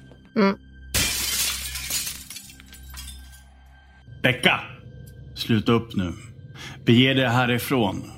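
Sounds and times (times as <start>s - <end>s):
speech: 0.4s - 0.6s, 4.2s - 4.8s, 5.4s - 6.3s, 6.9s - 8.1s
object being smashed, glass shattering: 0.9s - 3.5s
glass shards tinkling: 1.0s - 3.4s.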